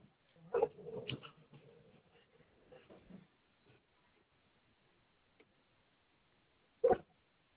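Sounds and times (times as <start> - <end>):
Dalmatian dog barking: 0.5 - 1.1, 6.8 - 7.1.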